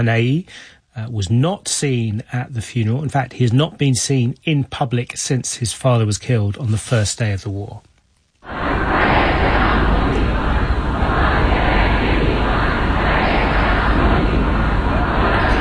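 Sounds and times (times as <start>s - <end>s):
speech: 0.0s - 10.2s
huge crowd of mourners shouting slogans at funeral proceedings: 8.4s - 15.5s.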